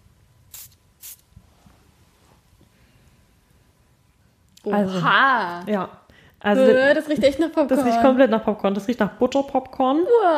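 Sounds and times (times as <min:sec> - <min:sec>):
popcorn-scented fragrance spray bottle hissing: 0:00.5 - 0:01.3
speech: 0:04.6 - 0:10.3.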